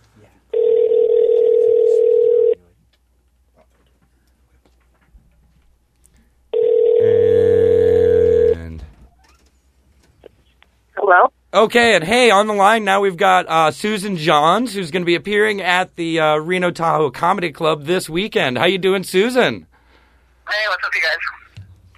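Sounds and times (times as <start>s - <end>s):
phone line electronic ring tones: 0.6s - 2.6s, 6.6s - 8.6s
speech: 11.6s - 19.7s, 20.5s - 21.3s.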